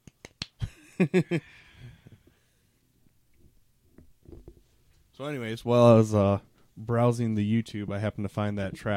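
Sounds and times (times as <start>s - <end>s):
soft golf clap: 0.0s - 0.7s
speech: 1.0s - 1.7s, 5.2s - 8.9s.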